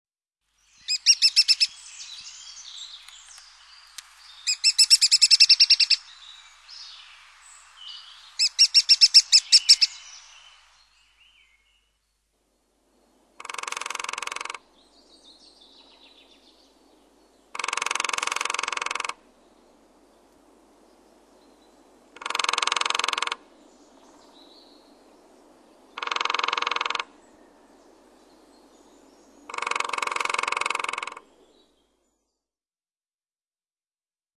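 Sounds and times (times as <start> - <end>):
lesser spotted woodpecker: 0.9 - 1.8, 3.0 - 6.0, 8.4 - 10.0, 13.4 - 14.6, 17.5 - 19.2, 22.2 - 23.4, 26.0 - 27.1, 29.5 - 31.3.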